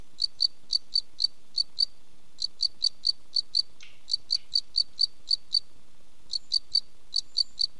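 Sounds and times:
cricket chirping: 0.2s - 5.7s, 6.3s - 7.7s.

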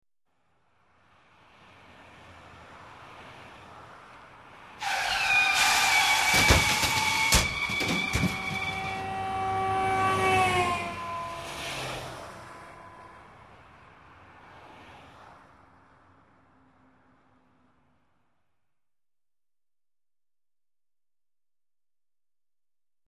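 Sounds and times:
car crash on the road: 4.8s - 13.3s.

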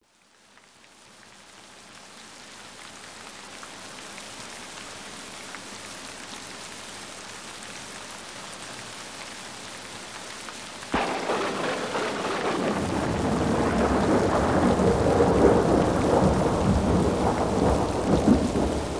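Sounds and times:
rain in a thunderstorm: 0.0s - 18.9s
thunder: 10.9s - 18.9s.

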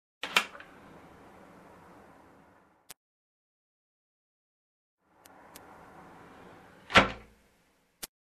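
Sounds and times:
window opening and closing: 0.2s - 2.7s, 5.1s - 7.4s.

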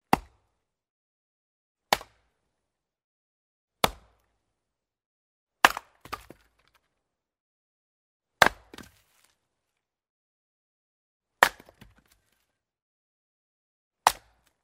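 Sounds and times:
chopping and splitting firewood: 0.1s - 0.3s, 1.9s - 2.2s, 3.8s - 4.2s, 5.6s - 6.8s, 8.4s - 9.3s, 11.4s - 12.3s, 14.0s - 14.6s.

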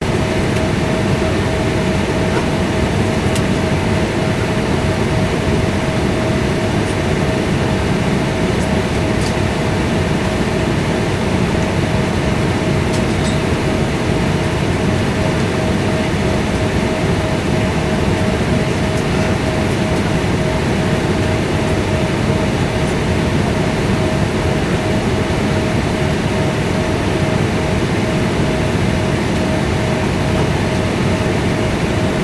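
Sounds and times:
Airbus A340 jet cabin noise: 0.0s - 32.2s.

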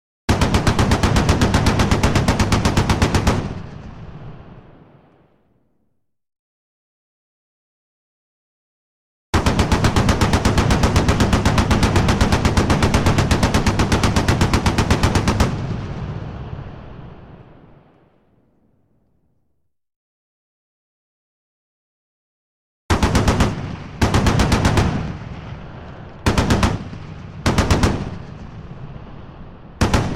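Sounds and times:
machine gun firing: 0.3s - 4.1s, 9.4s - 15.8s, 22.9s - 25.3s, 26.2s - 28.5s, 29.8s - 30.1s.

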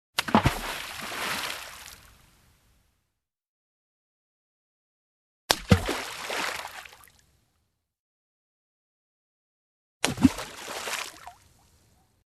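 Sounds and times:
stone thrown into water: 0.2s - 2.1s, 5.5s - 7.1s, 10.0s - 11.4s.

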